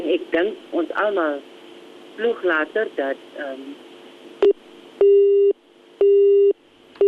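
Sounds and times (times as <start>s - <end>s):
speech: 0.4s - 1.6s, 2.2s - 4.6s
telephone busy tone after caller's line failed: 5.0s - 7.0s.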